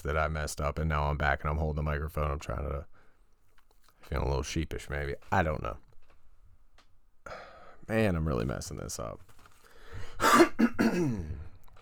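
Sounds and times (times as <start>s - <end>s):
speech: 0.0s - 3.0s, 4.1s - 5.8s, 7.3s - 9.3s, 10.2s - 11.4s
throat clearing: 10.2s - 11.6s.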